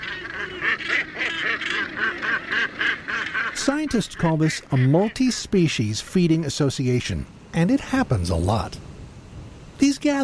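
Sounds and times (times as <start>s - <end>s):
gannets honking at a feeding frenzy: 0.0s - 6.0s
speech: 3.6s - 8.9s, 9.8s - 10.2s.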